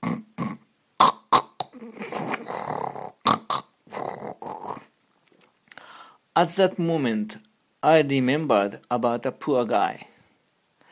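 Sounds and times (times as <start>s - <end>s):
person snoring recorded on an iPhone: 0.0s - 4.9s
speech: 6.4s - 10.1s.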